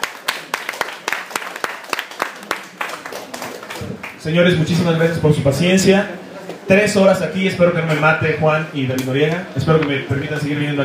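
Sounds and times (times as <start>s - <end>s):
audience applause at a comics fan talk: 0.0s - 4.2s
steady noise: 0.0s - 10.8s
speech: 4.2s - 10.8s.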